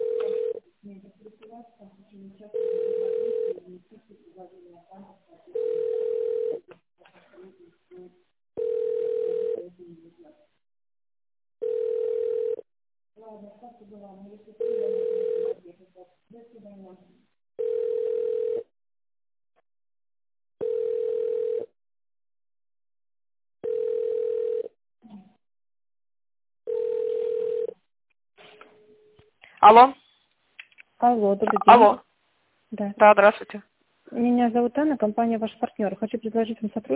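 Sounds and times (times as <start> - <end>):
telephone line beeps while a call is transferred: 0.0 - 0.6, 2.5 - 3.6, 5.6 - 6.6, 8.6 - 9.6, 11.6 - 12.6, 14.6 - 15.5, 17.6 - 18.7, 20.6 - 21.7, 23.6 - 24.7, 26.7 - 27.7
speech: 1.6 - 2.8, 29.7 - 30.0, 31.1 - 32.1, 32.7 - 36.9.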